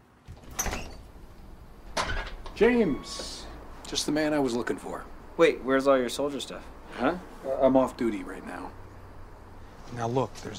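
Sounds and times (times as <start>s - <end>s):
door opening: 0.2s - 1.2s, 1.8s - 3.5s
speech: 2.6s - 8.8s, 9.9s - 10.5s.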